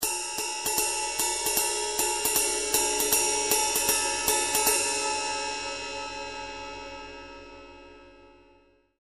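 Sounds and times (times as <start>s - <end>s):
20in ride cymbal: 0.0s - 7.6s.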